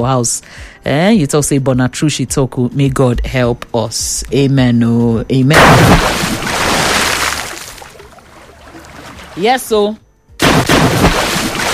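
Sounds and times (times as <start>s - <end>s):
speech: 0.0s - 6.5s, 9.4s - 10.0s
water poured over a person splashing: 5.6s - 9.8s, 10.4s - 11.7s.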